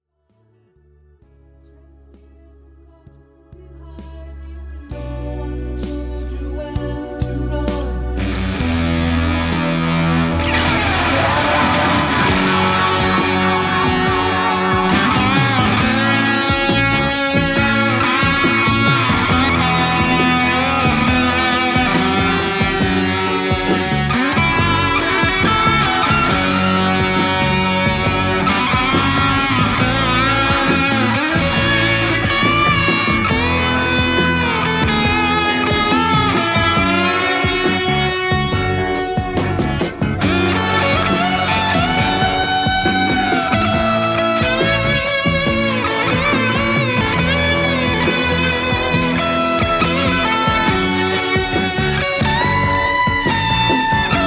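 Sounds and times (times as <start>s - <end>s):
backing track: 2.2s - 54.2s
Fender strat solo through Sunface, MXR Carbon Copy delay, Fender Twin reverb: 8.2s - 54.2s.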